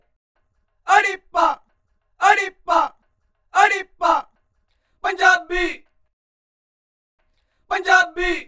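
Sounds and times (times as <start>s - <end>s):
backing vocals: 0.9s - 1.6s, 2.2s - 2.9s, 3.5s - 4.3s, 7.7s - 8.4s.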